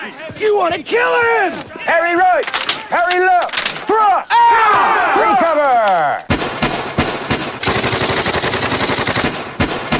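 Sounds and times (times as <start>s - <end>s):
speech: 0.6s - 5.1s
gunshots at a first shooting practice: 6.3s - 9.9s
rapid automatic gunfire burst: 6.3s - 9.9s.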